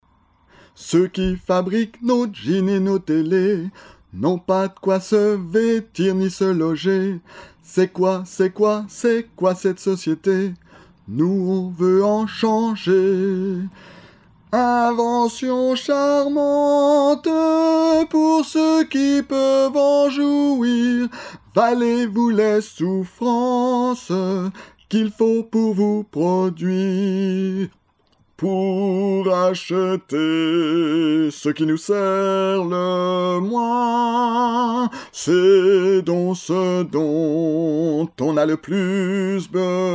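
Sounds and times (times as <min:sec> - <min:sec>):
single voice singing a chorale: 0:00.8 - 0:13.8, 0:14.5 - 0:27.8, 0:28.4 - 0:39.9.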